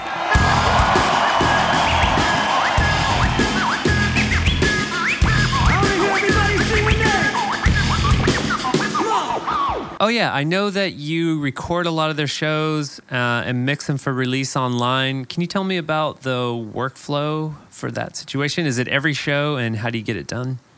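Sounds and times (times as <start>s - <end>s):
applause: 0.0s - 4.0s
large crowd cheering and roaring: 0.0s - 10.0s
sharp whistles from crowd: 0.3s - 10.0s
speech: 10.0s - 20.7s.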